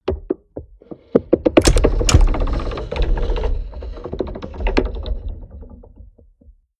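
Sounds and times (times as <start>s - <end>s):
large mechanical rattle: 1.6s - 5.7s.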